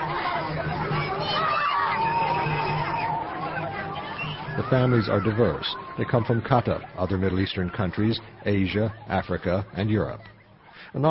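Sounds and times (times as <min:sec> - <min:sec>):
evening crowd chatter on a festival seafront: 0:00.0 - 0:11.0
speech: 0:04.6 - 0:11.0.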